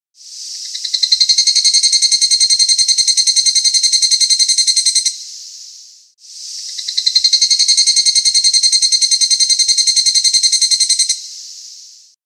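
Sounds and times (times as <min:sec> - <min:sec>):
higurashi cicada calling: 0:00.2 - 0:12.2.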